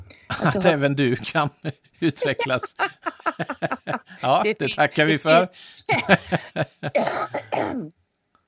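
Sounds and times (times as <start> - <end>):
laughter: 0.3 - 7.0
speech: 0.3 - 8.0
wet phlegmy cough: 6.9 - 7.9.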